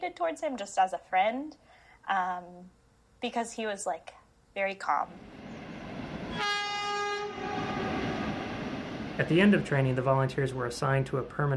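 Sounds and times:
speech: 0.0 - 5.4, 9.2 - 11.5
train rumbling past on rails: 5.1 - 11.5
train horn blast: 6.3 - 8.8.

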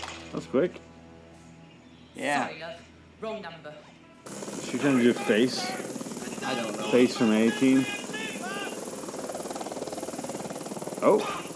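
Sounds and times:
speech: 0.3 - 0.9, 2.2 - 8.0, 11.0 - 11.5
helicopter engine whine: 4.2 - 11.5
helicopter rotor chopping in a movie scene: 4.2 - 11.5.

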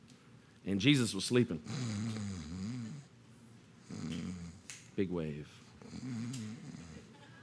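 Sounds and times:
speech: 0.7 - 2.2, 5.0 - 6.8
person imitating loud rumbling snoring with their voice: 1.6 - 3.1, 3.9 - 4.6, 5.8 - 7.1.

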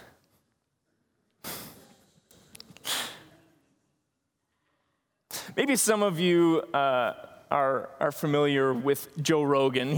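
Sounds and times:
people gasping in amazement: 1.4 - 2.1, 2.7 - 3.4
speech: 5.6 - 9.9.

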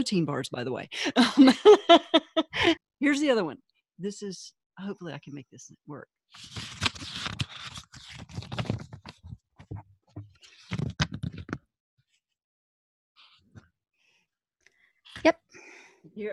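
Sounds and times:
speech: 0.0 - 7.2, 15.2 - 15.4, 16.2 - 16.3
laughter: 1.1 - 2.8
book pages being turned: 6.3 - 11.6, 15.1 - 15.4.

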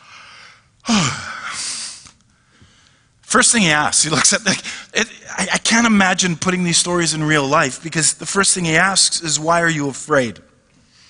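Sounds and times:
man acting out a yawn: 0.9 - 1.9
speech: 3.3 - 10.5.

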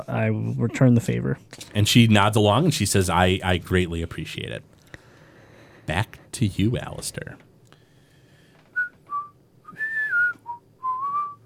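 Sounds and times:
speech: 0.0 - 4.7, 5.9 - 7.5
quiet hum: 0.0 - 11.4
person whistling a short wandering tune: 8.8 - 11.4.

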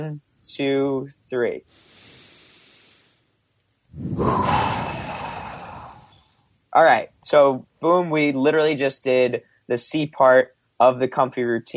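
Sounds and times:
speech: 0.0 - 1.9, 4.0 - 4.8, 6.8 - 11.7
deep breath in through the nose and out through the mouth: 1.7 - 3.3, 3.9 - 6.4.

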